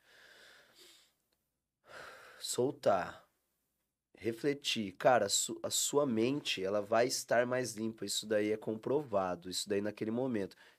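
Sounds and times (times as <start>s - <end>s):
deep breath in and out: 0.0s - 1.2s, 1.8s - 2.5s, 10.6s - 10.7s
speech: 2.4s - 3.2s, 4.2s - 10.7s.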